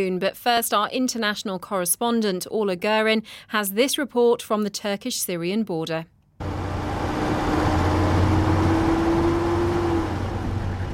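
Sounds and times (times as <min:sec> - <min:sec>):
speech: 0:00.0 - 0:06.5
U.S. military vehicle engines droning while withdrawing at dawn on the Syrian border: 0:06.4 - 0:10.9.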